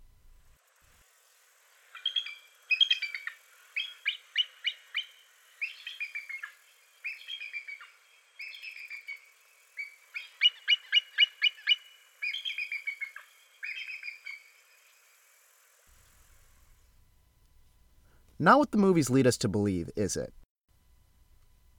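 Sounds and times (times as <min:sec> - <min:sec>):
bald eagle calling with high-pitched chittering notes: 0:01.9 - 0:14.9
speech: 0:18.4 - 0:20.4.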